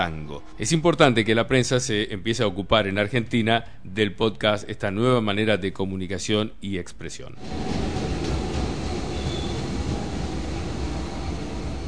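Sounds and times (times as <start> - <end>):
speech: 0.0 - 7.8
subway train rumbling through a metro station: 7.4 - 11.8.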